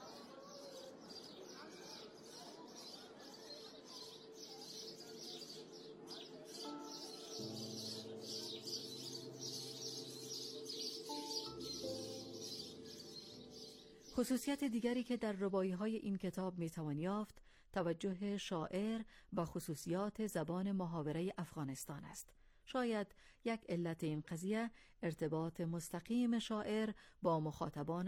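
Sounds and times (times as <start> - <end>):
chorus of sparrows chirping: 0.0 - 14.5
speech: 14.2 - 28.0.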